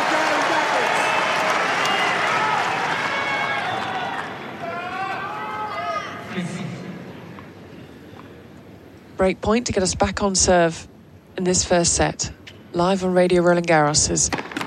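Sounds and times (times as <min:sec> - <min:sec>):
large tennis crowd roaring and cheering at break point: 0:00.0 - 0:06.3
individual voices shouting encouragement: 0:01.9 - 0:06.3
speech: 0:09.2 - 0:14.4.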